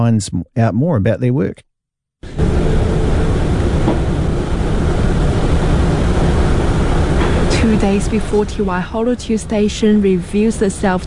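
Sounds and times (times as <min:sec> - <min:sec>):
speech: 0:00.0 - 0:02.8, 0:07.7 - 0:11.0
howling wind in an empty station: 0:02.2 - 0:11.0.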